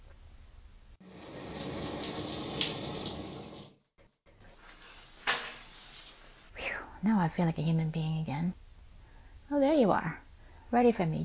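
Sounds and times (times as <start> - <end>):
shower water running: 1.0 - 3.8, 4.6 - 6.5
speech: 7.0 - 8.6, 9.5 - 11.2.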